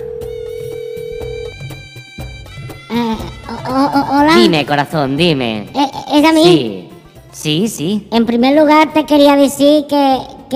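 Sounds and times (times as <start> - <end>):
electronic telephone tone signalling an incoming call: 0.0 - 1.8
speech: 2.9 - 6.8, 7.4 - 10.5.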